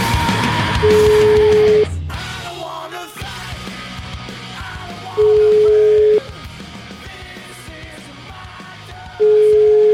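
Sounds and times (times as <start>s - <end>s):
telephone ringing tone while placing a call: 0.8s - 1.9s, 5.2s - 6.3s, 9.2s - 9.9s.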